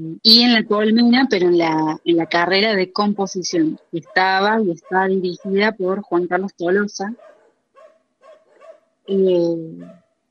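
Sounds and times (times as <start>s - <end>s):
speech: 0.0s - 7.4s, 9.1s - 10.0s
guard dogs barking angrily: 7.2s - 8.8s.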